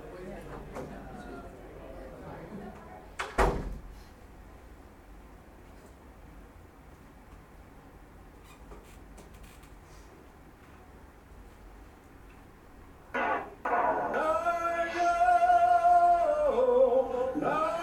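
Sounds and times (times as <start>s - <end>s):
low room hum: 0.0s - 17.8s
door closing: 3.2s - 3.8s.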